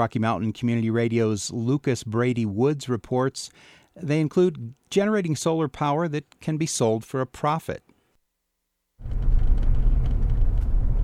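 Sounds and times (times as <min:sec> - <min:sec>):
speech: 0:00.0 - 0:07.9
car driving along a gravel road in the high desert of southwest Colorado: 0:09.0 - 0:11.0.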